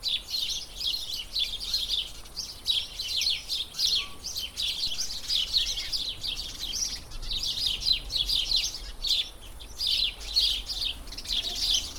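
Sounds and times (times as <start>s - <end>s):
sparrows chirping: 0.0s - 11.9s.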